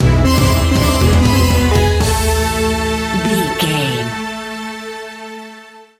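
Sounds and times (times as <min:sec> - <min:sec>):
groovy exotic Middle East world music stinger: 0:00.0 - 0:04.4.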